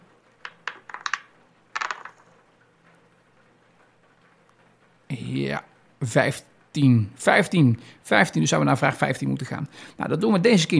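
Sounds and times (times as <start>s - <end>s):
dice-rolling sound effect from an app rolling two dice: 0.4s - 2.5s
speech: 5.3s - 10.7s.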